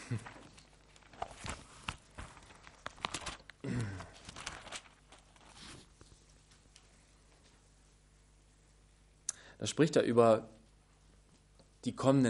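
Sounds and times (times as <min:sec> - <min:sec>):
speech: 0:00.1 - 0:00.3, 0:09.6 - 0:10.6, 0:11.9 - 0:12.2
Bible pages turning: 0:00.1 - 0:06.8.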